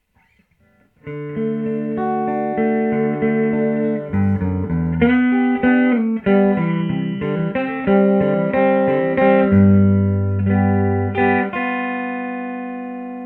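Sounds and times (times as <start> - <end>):
clean electric guitar on neck humbucker: 0.0 - 13.2.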